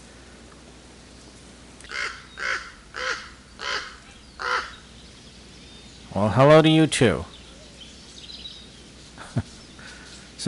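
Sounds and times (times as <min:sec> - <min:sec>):
quiet faint outdoor ambience: 0:00.0 - 0:10.4
crow cawing harshly: 0:01.8 - 0:04.8
speech: 0:06.2 - 0:07.3.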